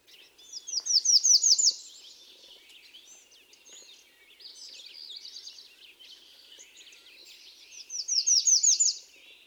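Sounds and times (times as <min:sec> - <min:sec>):
American Redstart singing: 0:00.0 - 0:09.4.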